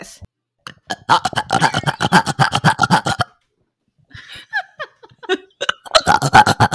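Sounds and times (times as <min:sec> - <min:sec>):
gulping squeaky intakes of air: 0:00.7 - 0:03.4, 0:05.7 - 0:06.7
rapid rhythmic short burps: 0:00.7 - 0:03.4, 0:05.7 - 0:06.7
speech: 0:01.1 - 0:01.4
laughter: 0:01.1 - 0:03.2, 0:04.1 - 0:06.7.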